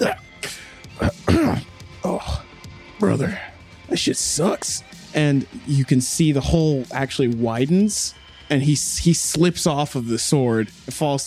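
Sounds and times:
voice imitating someone coughing up blood: 0.0 - 2.4, 3.0 - 3.4
speech: 3.0 - 11.2.

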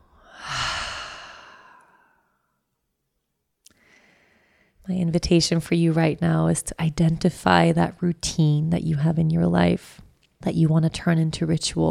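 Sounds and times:
deep breath let out through an open mouth: 0.0 - 2.3
speech: 4.9 - 11.8.

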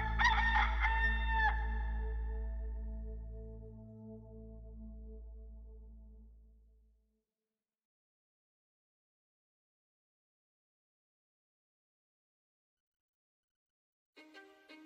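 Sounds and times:
low steady drone: 0.0 - 6.9
rooster crowing: 0.1 - 1.9.

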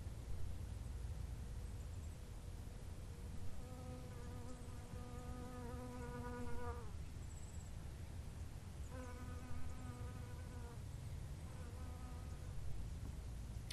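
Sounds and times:
outdoor hiss: 0.0 - 13.7
bee buzzing among flowering plants in Victoria Australia: 3.6 - 6.9, 8.9 - 10.8, 11.5 - 12.4.

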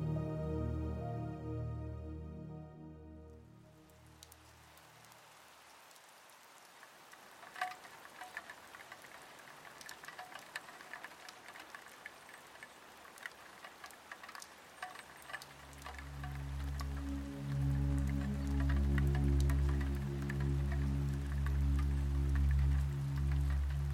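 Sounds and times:
mellow music: 0.0 - 4.5, 15.6 - 23.9
gentle rain pattering on window glass: 3.8 - 23.9.

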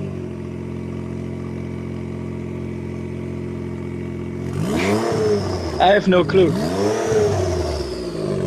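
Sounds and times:
Honda Ridgeline pickup truck engine idling and revving: 4.3 - 8.4
speech: 5.8 - 6.6.

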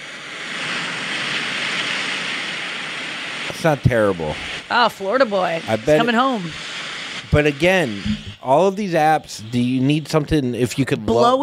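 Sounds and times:
ocean waves crashing: 0.0 - 8.7
speech: 3.6 - 6.6, 7.3 - 11.4.

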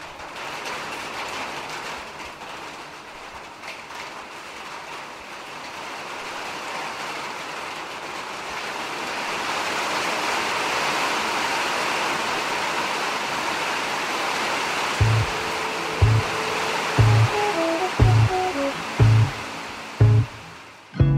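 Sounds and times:
rain pouring on a metal roof: 0.0 - 21.0
low evenly spaced thumps: 15.0 - 15.4, 16.0 - 16.4.

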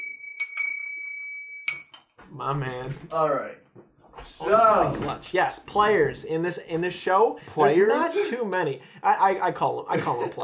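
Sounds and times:
bright bell ringing: 0.0 - 2.0
speech: 2.3 - 3.6, 4.2 - 10.4.

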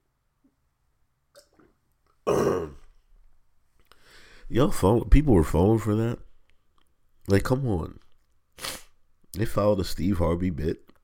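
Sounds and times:
person sipping water: 1.3 - 2.8
speech: 4.5 - 6.2, 7.3 - 8.0, 9.4 - 10.8.

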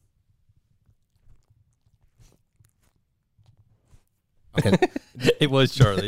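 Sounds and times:
pet gnawing on a bone: 0.1 - 4.2
laughter: 4.6 - 6.0
speech: 4.6 - 6.0.

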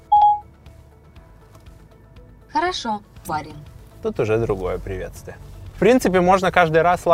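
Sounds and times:
electronic tone from a phone app: 0.0 - 0.5
speech: 2.6 - 7.1.

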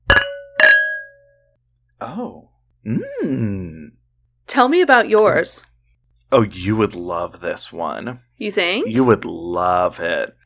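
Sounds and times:
wine glasses clinking in a toast: 0.0 - 1.4
speech: 2.0 - 5.7, 6.3 - 10.4.

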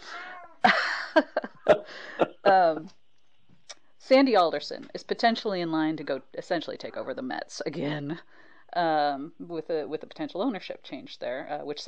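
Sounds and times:
cat meowing: 0.0 - 0.6
speech: 1.2 - 3.0, 4.1 - 11.8.

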